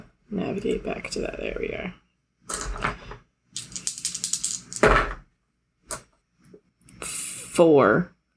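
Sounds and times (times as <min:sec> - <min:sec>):
speech: 0:00.3 - 0:02.6, 0:07.6 - 0:08.2
dice rolled in a tabletop game rattling across a hard surface: 0:03.6 - 0:05.0.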